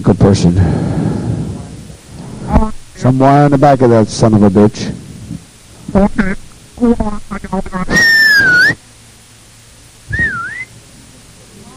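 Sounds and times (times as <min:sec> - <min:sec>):
speech: 0:00.0 - 0:00.9, 0:02.6 - 0:05.0, 0:05.9 - 0:08.8
person whistling outdoors: 0:07.9 - 0:08.8, 0:10.1 - 0:10.7.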